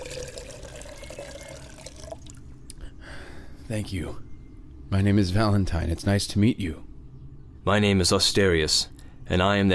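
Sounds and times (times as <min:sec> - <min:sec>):
water pouring into a cup or vessel: 0:00.0 - 0:02.4
speech: 0:03.7 - 0:04.3, 0:04.9 - 0:06.9, 0:07.6 - 0:09.7.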